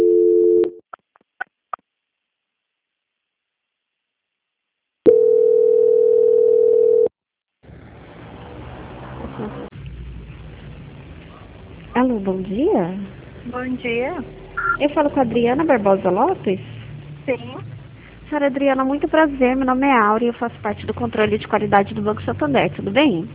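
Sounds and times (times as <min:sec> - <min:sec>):
telephone line tone during a bank call transfer: 0:00.0 - 0:00.8, 0:05.1 - 0:07.1, 0:14.6 - 0:14.8
speech: 0:12.0 - 0:16.7, 0:17.3 - 0:17.7, 0:18.3 - 0:23.3
short telephone line beeps: 0:14.6 - 0:14.8.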